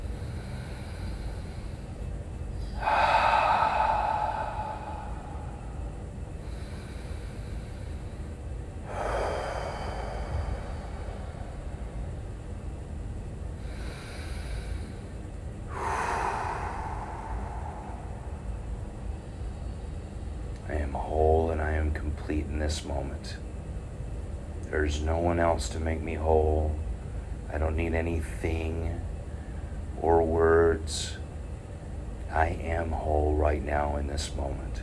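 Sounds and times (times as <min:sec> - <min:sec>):
deep slow sweeping breaths during a breathing exercise: 0:00.0 - 0:21.9, 0:28.9 - 0:30.0
steady low noise: 0:00.0 - 0:34.8
speech: 0:22.1 - 0:23.4, 0:24.7 - 0:26.8, 0:27.5 - 0:29.0, 0:30.0 - 0:31.2, 0:32.4 - 0:34.8.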